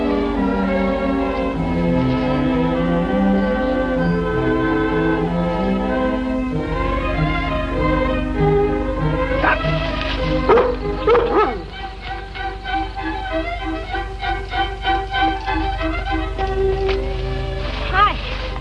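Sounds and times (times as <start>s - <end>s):
steady low mechanical rumble: 0.0s - 18.5s
dog barking and yipping: 10.4s - 11.8s.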